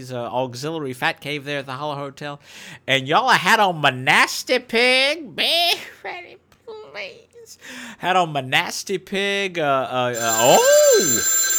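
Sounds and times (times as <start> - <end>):
speech: 0.0 - 6.4, 7.0 - 11.4
voice imitating a ringing hotel telephone: 10.1 - 11.5.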